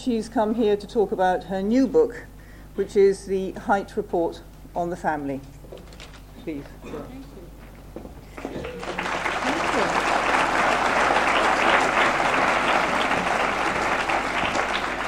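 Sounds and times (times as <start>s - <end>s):
speech: 0.0s - 5.6s, 6.4s - 7.3s
studio audience applause: 8.3s - 15.0s.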